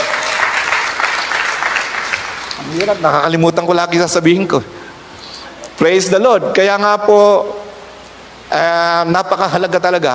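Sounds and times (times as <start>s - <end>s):
church congregation applauding during a worship service: 0.0s - 3.3s
speech: 2.7s - 4.8s, 5.8s - 7.6s, 8.5s - 10.1s.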